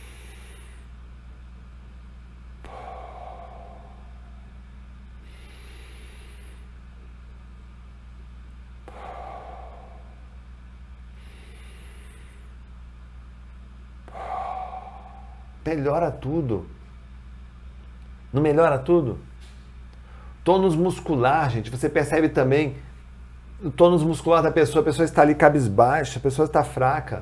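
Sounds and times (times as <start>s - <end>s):
person taking deep breaths during a guided breathing exercise: 0.0s - 1.0s, 2.6s - 7.1s, 8.8s - 12.6s, 14.0s - 15.7s, 20.0s - 20.4s
low steady hum: 0.0s - 27.2s
speech: 15.6s - 16.8s, 18.3s - 19.3s, 20.4s - 22.9s, 23.6s - 27.2s.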